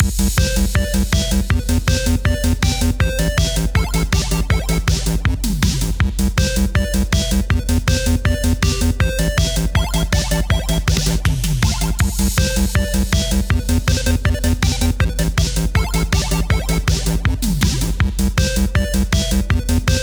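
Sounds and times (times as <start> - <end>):
background music: 0.0 - 20.0.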